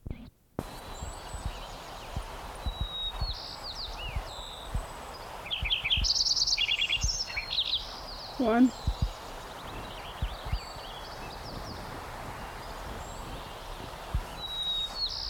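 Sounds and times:
soft low thuds: 0.0 - 5.0, 8.7 - 15.1
Lincoln's sparrow song: 0.1 - 15.2
speech: 8.4 - 8.9.

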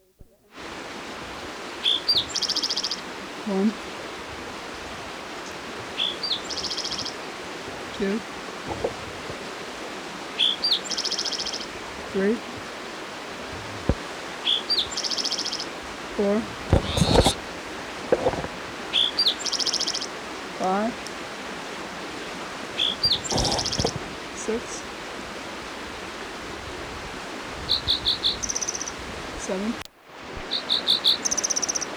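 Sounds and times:
rushing creek: 0.5 - 31.9
spotted towhee singing beside a creek: 1.8 - 3.0, 6.0 - 7.2, 10.4 - 11.7, 14.4 - 15.7, 18.9 - 20.1, 22.8 - 24.0, 27.7 - 29.0, 30.5 - 31.9
speech: 3.5 - 3.9, 8.0 - 8.3, 12.2 - 12.5.

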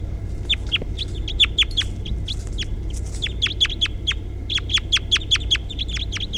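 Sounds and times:
low background rumble: 0.0 - 6.3
crossbill chip calls: 0.4 - 6.3.

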